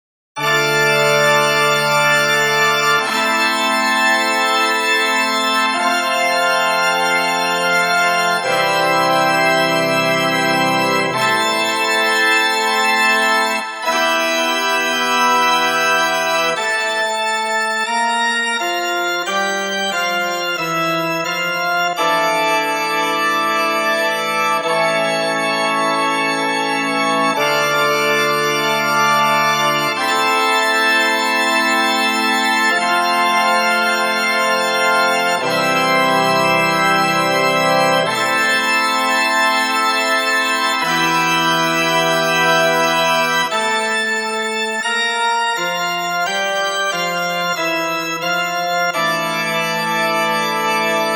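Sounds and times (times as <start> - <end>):
recorded organ playing: 0.4 - 51.1.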